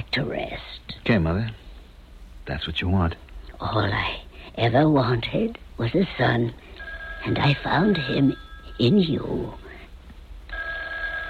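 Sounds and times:
speech: 0:00.2 - 0:01.6, 0:02.5 - 0:09.6
telephone ringing with a bright trilling tone: 0:06.7 - 0:09.5, 0:10.5 - 0:11.2.

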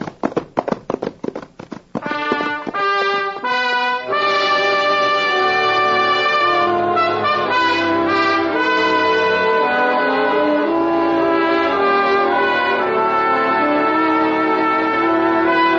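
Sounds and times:
galloping horse hooves: 0:00.0 - 0:04.9
orchestral music: 0:02.1 - 0:15.7.

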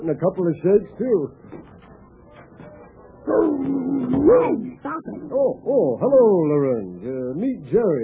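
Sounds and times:
speech: 0:00.0 - 0:01.7, 0:03.3 - 0:08.0
dog giving a drawn-out whimpering whine: 0:03.3 - 0:04.8.

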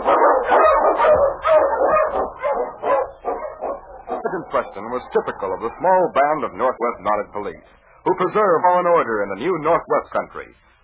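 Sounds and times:
Eskimo sled lead dog barking harshly: 0:00.0 - 0:08.6
speech: 0:04.6 - 0:10.8.

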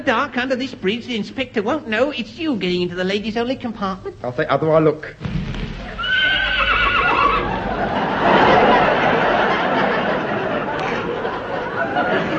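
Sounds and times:
speech: 0:00.0 - 0:05.4
horse letting out a loud quavering whinny: 0:06.0 - 0:07.5
laughter: 0:06.0 - 0:12.3.

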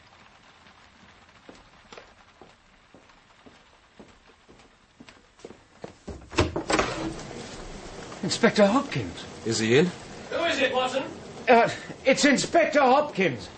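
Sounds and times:
quick footsteps hurrying down stairs: 0:01.5 - 0:07.1
front door unlatched and pulled open: 0:06.1 - 0:08.2
speech: 0:08.2 - 0:10.0, 0:10.6 - 0:13.5.

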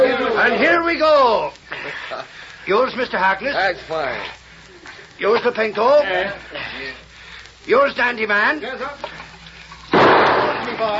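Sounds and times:
speech: 0:00.5 - 0:04.4, 0:05.2 - 0:07.0, 0:07.6 - 0:09.3, 0:10.8 - 0:10.9
gunshot-like crack striking a water skin: 0:09.9 - 0:10.8.

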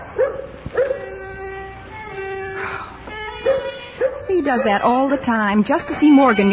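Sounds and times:
dog yipping and whimpering at a violin: 0:00.1 - 0:01.2, 0:03.4 - 0:06.5
sustained high-pitched violin tone played by a boy learning the violin: 0:00.8 - 0:06.5
speech: 0:04.4 - 0:06.5.

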